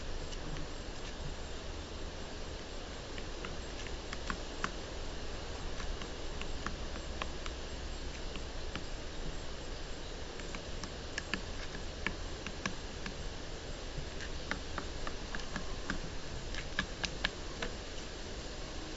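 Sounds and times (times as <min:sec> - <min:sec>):
steady background hiss: 0:00.0 - 0:18.9
downy woodpecker pecking: 0:02.5 - 0:09.4, 0:10.2 - 0:18.1.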